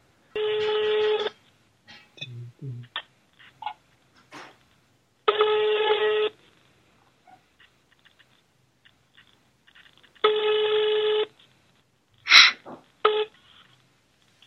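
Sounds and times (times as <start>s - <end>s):
buzzy phone line ring tones: 0.3s - 1.4s, 5.2s - 6.4s, 9.7s - 11.4s.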